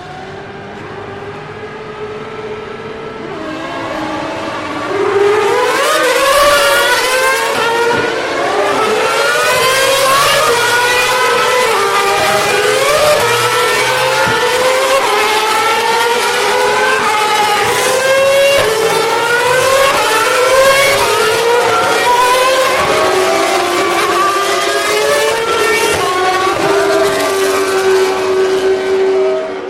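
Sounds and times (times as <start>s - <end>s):
several racing car engines roaring while passing: 0.0s - 29.6s.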